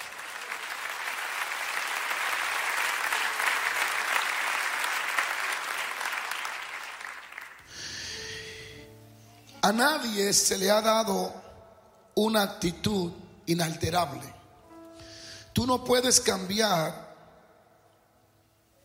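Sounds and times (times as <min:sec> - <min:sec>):
audience applauding: 0:00.0 - 0:08.0
speech: 0:09.6 - 0:11.4, 0:12.2 - 0:14.4, 0:15.6 - 0:17.1.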